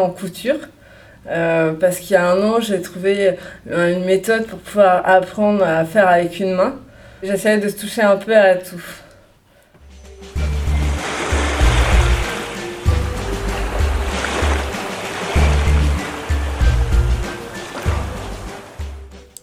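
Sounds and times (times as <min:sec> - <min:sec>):
speech: 0:00.0 - 0:09.0
steady low rhythmic rumble: 0:09.9 - 0:19.4
ocean surf waves breaking: 0:10.4 - 0:19.2.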